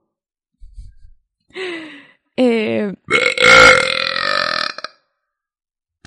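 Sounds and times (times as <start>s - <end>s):
speech: 1.5s - 3.2s
loud belch: 3.1s - 5.0s.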